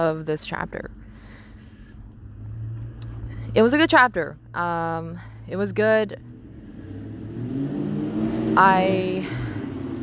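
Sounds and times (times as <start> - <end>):
speech: 0.0 - 1.0, 3.6 - 6.3, 8.6 - 9.4
low rumble of traffic: 0.0 - 10.0
car engine revving and accelerating past: 1.9 - 10.0.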